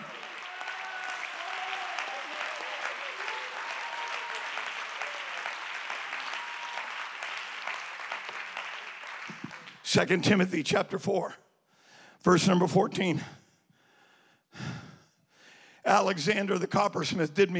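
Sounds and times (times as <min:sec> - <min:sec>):
faint voices and cheers: 0:00.0 - 0:07.4
large crowd applauding: 0:00.0 - 0:10.2
speech: 0:09.9 - 0:11.4, 0:12.2 - 0:13.4, 0:15.9 - 0:17.5.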